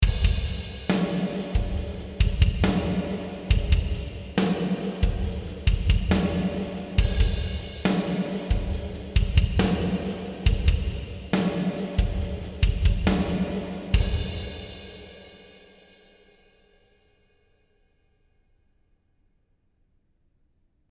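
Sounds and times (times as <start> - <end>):
snare drum: 0.0 - 14.7.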